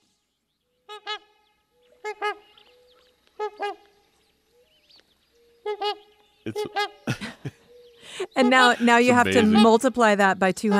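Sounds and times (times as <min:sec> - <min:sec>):
trumpeter swan calls: 0:00.9 - 0:04.1, 0:05.6 - 0:07.2, 0:08.1 - 0:09.8
speech: 0:06.5 - 0:07.2, 0:08.4 - 0:10.7
laughter: 0:06.5 - 0:09.8.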